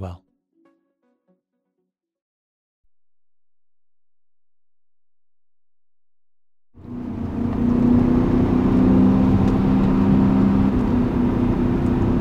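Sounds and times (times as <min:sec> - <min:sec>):
speech: 0:00.0 - 0:00.2
silver 2003 BMW M5 engine driven on mountain roads of the Hudson Valley: 0:06.8 - 0:12.1.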